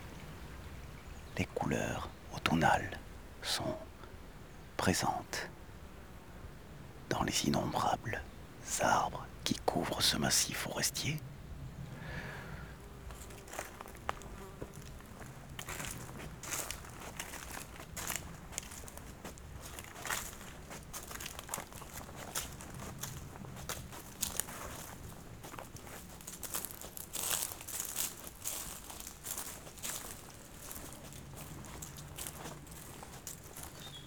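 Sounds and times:
speech: 0:01.4 - 0:03.9, 0:04.8 - 0:05.6, 0:07.1 - 0:11.3
footsteps crunching dry autumn leaves: 0:13.0 - 0:34.0.

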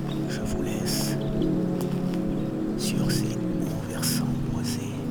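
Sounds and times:
other bird calls on wooded hillside: 0:00.1 - 0:01.4, 0:02.7 - 0:05.0.

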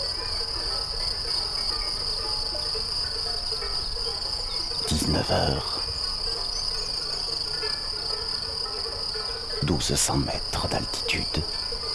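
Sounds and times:
crickets chirring in a mid-mountain outdoor ambience beside a winding road: 0:00.0 - 0:11.9
speech: 0:05.1 - 0:05.8, 0:09.7 - 0:11.6.

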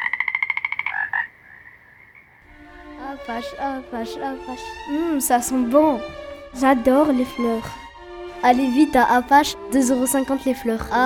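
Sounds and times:
frog croaking: 0:00.0 - 0:02.5
speech: 0:03.2 - 0:07.8, 0:08.4 - 0:11.0.

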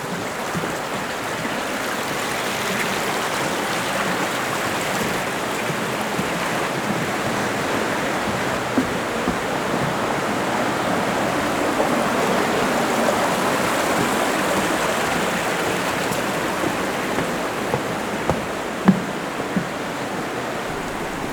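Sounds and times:
river roaring through a canyon beside a trail: 0:00.0 - 0:21.3.

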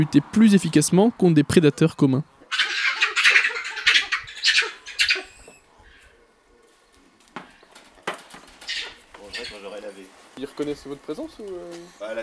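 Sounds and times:
speech: 0:00.0 - 0:02.3, 0:10.6 - 0:12.2
guinea fowl giving harsh rasping alarm cackles: 0:01.5 - 0:06.3, 0:08.6 - 0:09.7.

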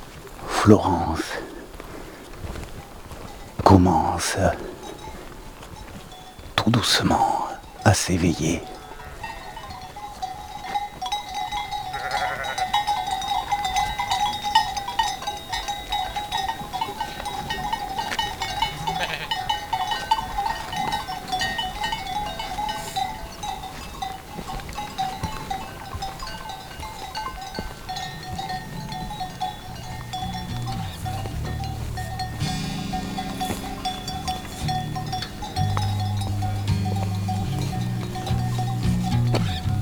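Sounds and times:
continuous tinkling of bells: 0:00.2 - 0:39.8
speech: 0:00.7 - 0:01.5, 0:03.7 - 0:04.8, 0:06.7 - 0:08.8
flock of ewes bleating beneath the Viscos peak: 0:07.2 - 0:10.3, 0:11.8 - 0:14.5, 0:15.7 - 0:23.8, 0:27.8 - 0:39.8.

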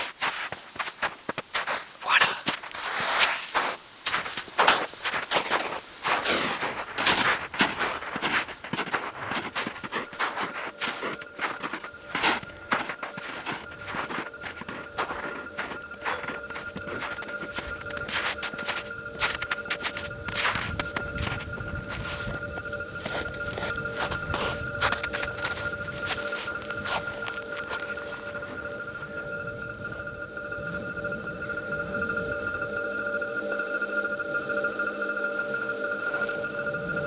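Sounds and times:
running footsteps heading onto a grassy slope: 0:00.0 - 0:29.1
steady tonal sounds: 0:01.8 - 0:37.0.

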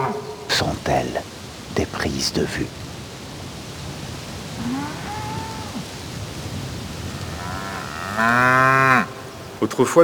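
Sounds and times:
steady hiss: 0:00.0 - 0:10.0
speech: 0:00.6 - 0:02.8, 0:08.2 - 0:09.0, 0:09.6 - 0:10.0
cows mooing: 0:04.6 - 0:05.8, 0:07.1 - 0:09.2.

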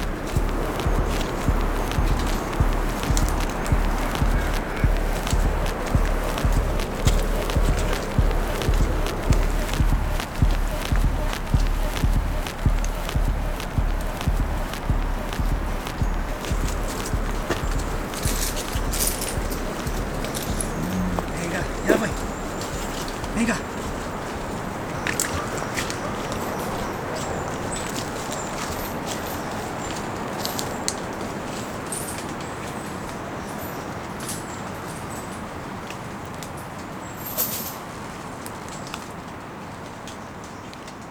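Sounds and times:
rustling: 0:00.0 - 0:30.7
hooves of two cows plodding along a dirt logging trail: 0:00.0 - 0:36.0.

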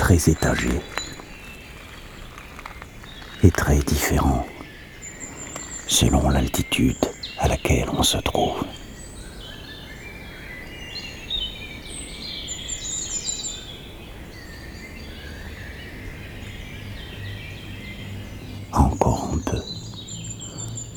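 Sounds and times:
rustling: 0:00.0 - 0:05.9
birds singing and chirping: 0:00.0 - 0:20.9
soft outdoor hiss: 0:00.0 - 0:20.9
speech: 0:00.1 - 0:00.9, 0:03.4 - 0:04.5, 0:05.9 - 0:08.8.

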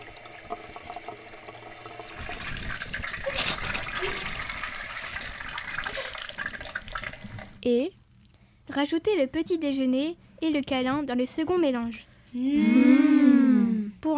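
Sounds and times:
water gushing from a tap filling a bath or running in a shower: 0:00.0 - 0:07.6
speech: 0:07.6 - 0:08.0, 0:08.7 - 0:13.0.

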